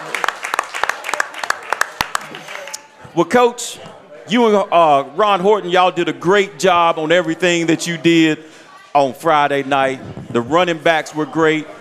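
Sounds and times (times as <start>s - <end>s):
small group clapping in applause: 0.0s - 3.0s
speech: 3.2s - 11.7s.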